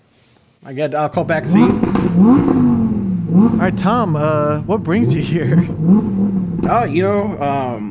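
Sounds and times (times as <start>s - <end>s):
speech: 0.6s - 7.8s
car engine idling and revving: 1.2s - 7.8s.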